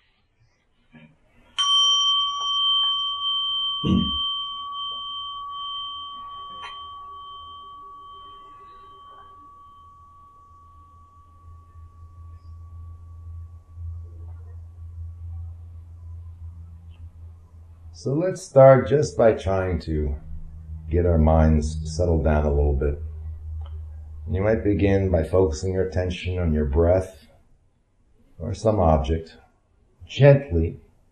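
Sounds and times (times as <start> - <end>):
meditation gong struck to begin a meditation session: 1.6 - 27.0
soft low rumble: 2.9 - 27.7
speech: 3.8 - 4.2, 18.0 - 20.2, 20.9 - 23.0, 24.3 - 27.2, 28.4 - 29.4, 30.1 - 30.8.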